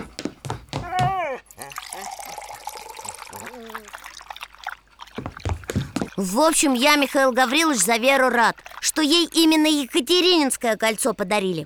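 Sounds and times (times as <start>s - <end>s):
water pouring into a bowl: 1.6s - 5.5s, 7.4s - 9.9s
speech: 6.2s - 11.6s.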